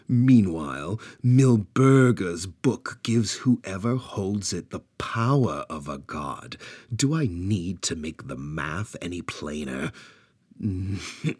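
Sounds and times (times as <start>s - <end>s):
speech: 0.1s - 11.3s
person clearing throat: 10.6s - 11.3s
person coughing: 10.7s - 11.3s.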